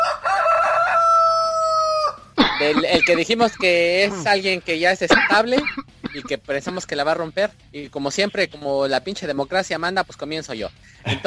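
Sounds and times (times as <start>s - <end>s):
rooster crowing sound effect: 0.0s - 2.3s
laughter: 2.6s - 4.4s, 5.1s - 6.8s, 11.0s - 11.2s
speech: 2.6s - 11.2s.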